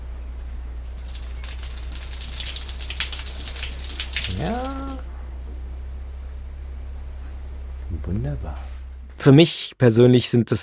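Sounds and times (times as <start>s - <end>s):
shower water running from a pipe: 1.0s - 5.0s
speech: 4.4s - 4.8s, 8.1s - 10.6s.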